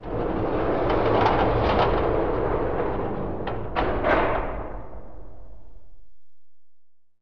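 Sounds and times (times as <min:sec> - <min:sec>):
large metal jail door sliding: 0:00.0 - 0:05.6.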